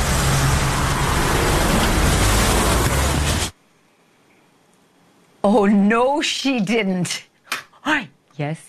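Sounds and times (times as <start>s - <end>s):
car speeding away from police in a high-speed chase: 0.0s - 3.5s
rushing road noise: 0.0s - 3.6s
speech: 5.4s - 8.6s.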